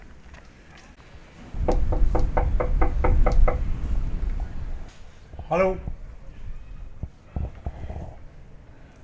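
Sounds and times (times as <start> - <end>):
quiet outdoor ambience: 0.0 - 9.0
knocking on the wooden front door of a house in the west coast archipelago: 1.6 - 3.6
speech: 5.5 - 5.9.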